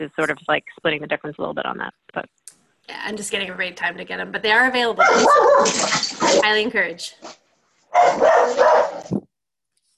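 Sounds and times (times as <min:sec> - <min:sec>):
speech: 0:00.0 - 0:09.2
loud dog barking and snarling: 0:05.0 - 0:06.5, 0:07.9 - 0:09.1.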